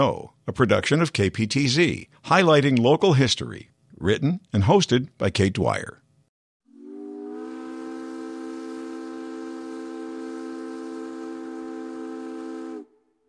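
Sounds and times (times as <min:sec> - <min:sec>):
speech: 0:00.0 - 0:06.0
ferry steam whistle blast: 0:06.7 - 0:13.2.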